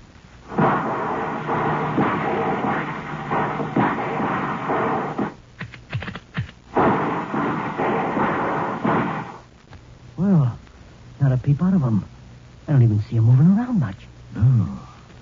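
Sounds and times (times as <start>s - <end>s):
gunfire volleys into a clearing: 0.5s - 5.4s, 6.7s - 9.5s
speech: 11.4s - 14.8s.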